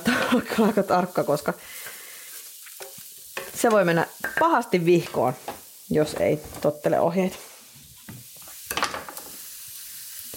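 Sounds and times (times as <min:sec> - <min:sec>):
tablespoon of coriander seeds frying in a hot pan: 0:00.0 - 0:10.3
speech: 0:00.3 - 0:01.9, 0:03.6 - 0:07.5.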